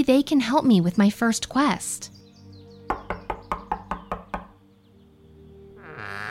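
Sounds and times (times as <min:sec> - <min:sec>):
speech: 0:00.0 - 0:02.2
knocking on a wooden farmhouse door in a small farming village: 0:02.9 - 0:04.6.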